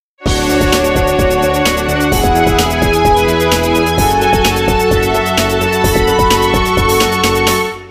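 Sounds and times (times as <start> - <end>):
strings: 0.2 - 7.9.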